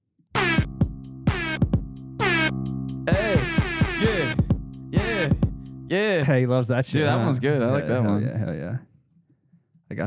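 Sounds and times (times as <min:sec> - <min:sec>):
air horn sound effect: 0:00.4 - 0:02.6, 0:03.2 - 0:05.4
speech: 0:05.9 - 0:08.9.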